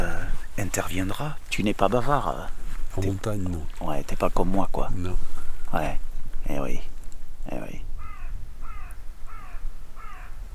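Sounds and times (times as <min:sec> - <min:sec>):
low steady outdoor rumble: 0:00.0 - 0:09.2
speech: 0:00.6 - 0:07.8
crow cawing: 0:07.9 - 0:10.5.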